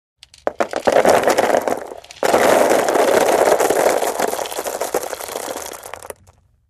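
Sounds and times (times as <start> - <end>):
rock gravel pouring onto a board outdoors: 0.3 - 6.4.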